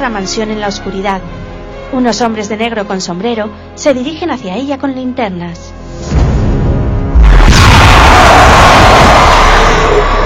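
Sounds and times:
speech: 0.0 - 5.7
loud explosion at a mansion: 6.1 - 10.2
dense roaring rumble of an explosion: 7.1 - 10.2.

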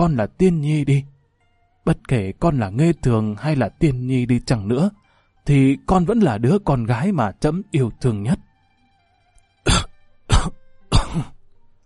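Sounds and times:
speech: 0.0 - 1.1, 1.8 - 8.4, 9.6 - 11.4
old man's dry coughing fit: 9.7 - 11.4.

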